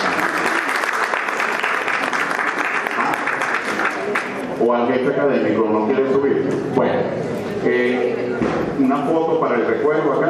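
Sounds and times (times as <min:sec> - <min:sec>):
audience applause at an academic ceremony: 0:00.0 - 0:04.5
speech: 0:04.7 - 0:10.2.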